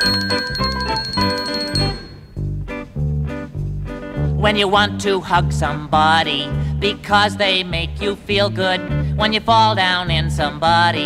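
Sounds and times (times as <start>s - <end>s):
small bells tinkling: 0.0s - 2.3s
speech: 4.4s - 11.0s.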